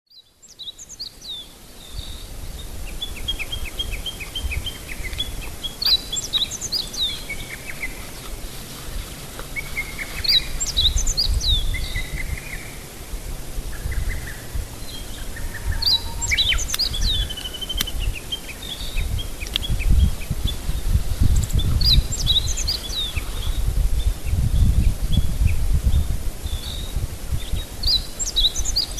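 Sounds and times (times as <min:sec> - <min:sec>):
meadow bunting: 0:00.1 - 0:28.9.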